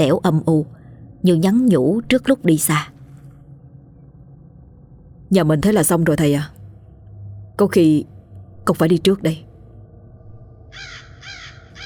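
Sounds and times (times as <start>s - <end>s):
speech: 0.0s - 2.9s, 5.3s - 6.6s, 7.6s - 8.1s, 8.7s - 9.5s
low steady rumble: 0.0s - 11.8s
crows cawing mournfully outside: 10.7s - 11.8s.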